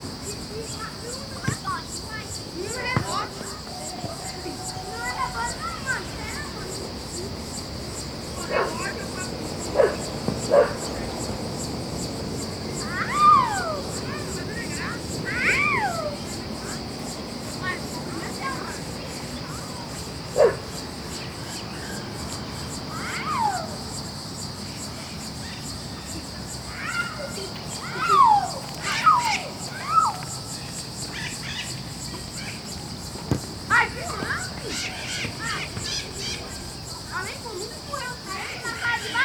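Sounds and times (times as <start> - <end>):
children talking and shouting while playing ball in a rural setting: 0.0 - 39.2
cicadas buzzing in the Cerrado: 0.0 - 39.2
crickets chirping in the Cerrado: 0.0 - 39.2
children playing ball in a rural setting: 2.9 - 4.3, 10.2 - 10.5, 33.1 - 35.9.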